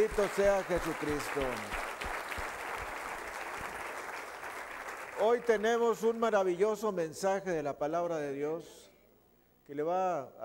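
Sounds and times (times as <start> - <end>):
speech: 0.0 - 1.8, 5.2 - 8.8, 9.7 - 10.4
congregation applauding: 0.0 - 6.2.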